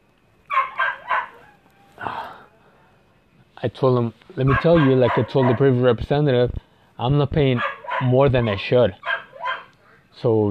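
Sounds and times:
dog barking: 0.5 - 1.6, 4.5 - 5.8, 7.5 - 10.0
speech: 3.6 - 9.0, 10.2 - 10.4.

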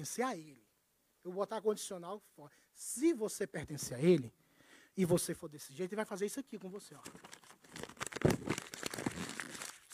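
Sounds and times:
speech: 0.0 - 0.6, 1.2 - 4.4, 5.0 - 7.8
crinkly paper or plastic crumpled by hand: 6.8 - 9.9.

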